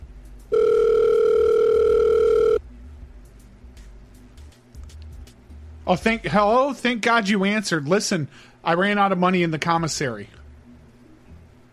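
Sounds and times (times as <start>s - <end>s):
telephone call-connecting electronic tone: 0.5s - 2.6s
speech: 5.9s - 10.4s.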